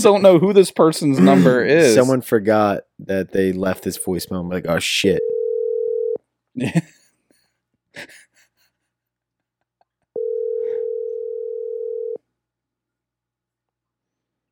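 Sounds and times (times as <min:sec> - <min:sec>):
speech: 0:00.0 - 0:05.4, 0:06.6 - 0:07.0, 0:08.0 - 0:08.2
telephone ringback tone while a number is called back: 0:05.2 - 0:06.2, 0:10.2 - 0:12.2.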